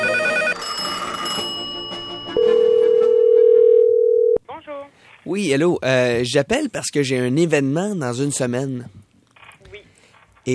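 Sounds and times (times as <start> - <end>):
loud steady single-pitched telephone line tone: 0.0 - 4.4
speech: 5.3 - 9.0.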